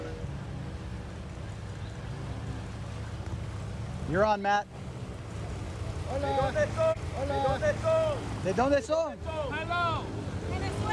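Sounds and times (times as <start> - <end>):
boat engine droning over water: 0.0 - 10.9
speech: 4.1 - 4.8, 6.1 - 10.3.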